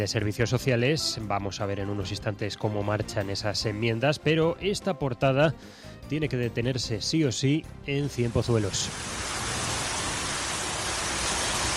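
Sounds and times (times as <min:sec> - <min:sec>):
speech: 0:00.0 - 0:09.4
heavy rain pouring: 0:08.2 - 0:11.7.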